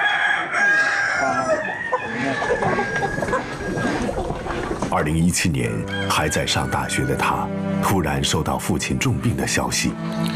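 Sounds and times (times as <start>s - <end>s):
rooster crowing: 0.0s - 4.0s, 5.9s - 7.2s
flock of chickens clucking: 0.6s - 5.0s
speech: 4.9s - 10.3s.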